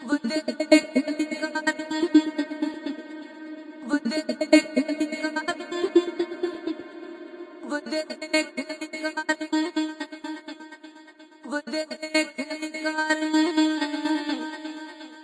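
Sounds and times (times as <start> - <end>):
stuttery spacey Indian vocal loop: 0.0 - 15.2.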